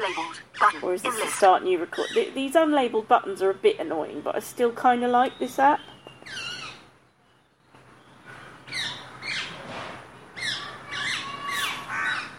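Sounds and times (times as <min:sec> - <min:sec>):
rose-ringed parakeet squawking: 0:00.0 - 0:02.4, 0:06.2 - 0:06.8, 0:10.4 - 0:12.3
steady low hum: 0:00.0 - 0:12.3
speech: 0:00.8 - 0:06.4.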